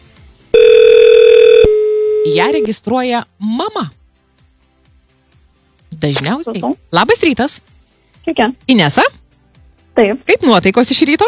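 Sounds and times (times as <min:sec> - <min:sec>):
telephone line ringing tone after a number is dialed: 0:00.6 - 0:02.8
speech: 0:02.3 - 0:04.0, 0:06.0 - 0:09.2, 0:10.0 - 0:11.2.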